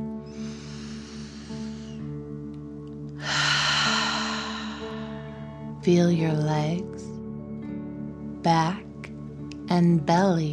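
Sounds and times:
soft tonal background: 0.0 - 10.5
deep forceful breathing in and out through the mouth: 0.2 - 2.3, 3.2 - 5.8
speech: 5.8 - 7.1, 8.4 - 8.8, 9.8 - 10.5.

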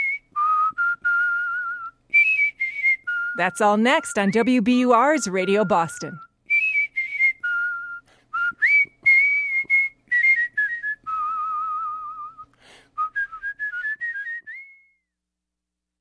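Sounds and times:
person whistling a lively agile melody with trills: 0.0 - 15.2
speech: 3.4 - 6.2.

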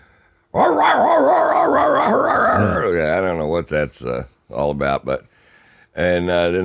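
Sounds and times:
drug-sniffing dogs on a plane barking and howling: 0.6 - 2.8
speech: 3.5 - 5.3, 6.0 - 6.6.

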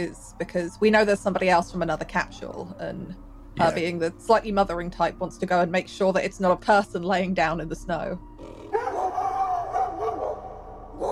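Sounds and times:
speech: 0.0 - 8.6
leashed dogs in a cage in the snow howling and barking: 8.4 - 11.1.

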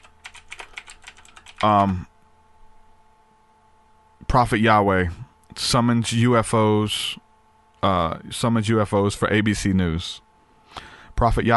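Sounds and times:
typing on a computer keyboard: 0.0 - 2.0
speech: 1.6 - 2.1, 4.3 - 7.2, 7.8 - 10.2, 10.8 - 11.5.

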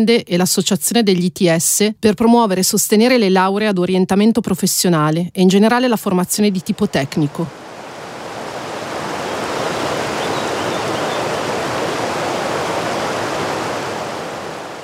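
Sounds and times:
speech: 0.0 - 7.6
mountain river flowing over rocks: 7.5 - 14.8.

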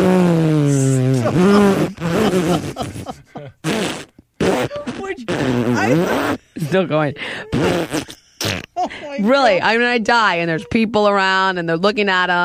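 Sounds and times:
voice imitating a long horse fart: 0.0 - 3.0, 3.6 - 6.4, 7.5 - 8.8
laughter: 0.8 - 3.7
speech: 1.3 - 3.7, 5.5 - 8.1, 9.2 - 12.4.

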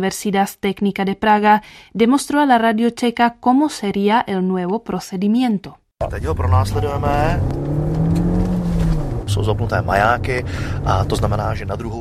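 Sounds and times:
speech: 0.0 - 7.6, 9.3 - 12.0
car engine revving hard during a police chase: 6.0 - 12.0.

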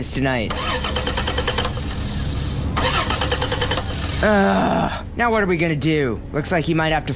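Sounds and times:
speech: 0.0 - 1.2, 4.2 - 7.1
car engine cranking but failing to start: 0.5 - 4.4.

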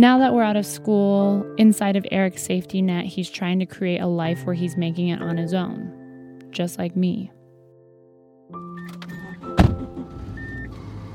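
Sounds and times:
speech: 0.0 - 7.4
car chime tones: 8.6 - 10.8
car interior hum: 8.9 - 11.1.

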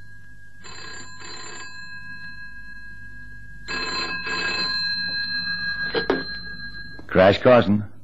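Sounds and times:
telephone ringing with trilling bell tones: 0.0 - 7.6
speech: 7.1 - 8.0.

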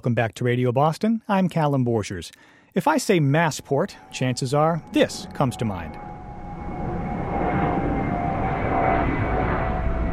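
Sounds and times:
speech: 0.0 - 6.1
airplane engine roar at Logan Airport in Boston: 3.3 - 10.1.

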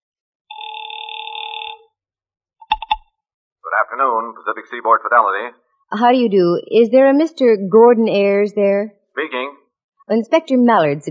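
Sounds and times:
ring tone over a telephone line: 0.5 - 1.9
speech: 3.8 - 11.0.

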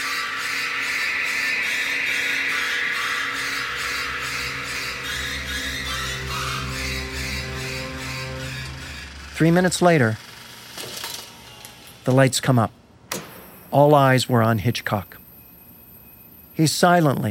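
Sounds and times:
shrieking violin stabs from orchestral film score: 0.0 - 10.3
sustained low strings: 2.4 - 10.2
speech: 9.4 - 10.2, 12.1 - 12.8, 13.7 - 15.2, 16.6 - 17.2.

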